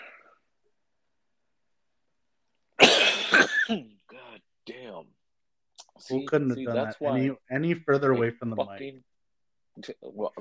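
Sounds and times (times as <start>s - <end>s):
loud harsh cough: 2.8s - 5.0s
speech: 3.7s - 4.0s, 6.0s - 9.1s, 9.8s - 10.3s.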